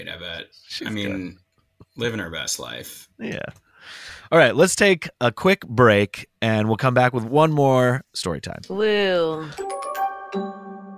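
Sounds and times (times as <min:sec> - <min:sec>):
speech: 0:00.0 - 0:01.4, 0:02.0 - 0:10.6
two-note doorbell chime: 0:09.4 - 0:10.9.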